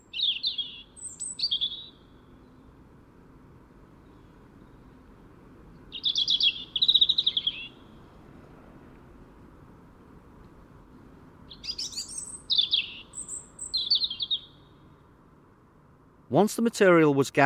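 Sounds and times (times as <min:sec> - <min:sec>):
bird warbling in winter: 0:00.0 - 0:02.0, 0:05.9 - 0:08.0, 0:11.5 - 0:14.8
speech: 0:16.4 - 0:17.4.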